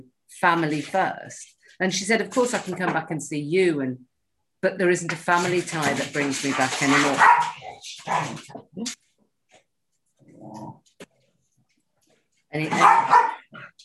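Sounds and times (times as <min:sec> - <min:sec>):
speech: 0:00.0 - 0:09.0, 0:12.5 - 0:13.7
dogs barking and snarling: 0:06.4 - 0:08.6, 0:12.7 - 0:13.8.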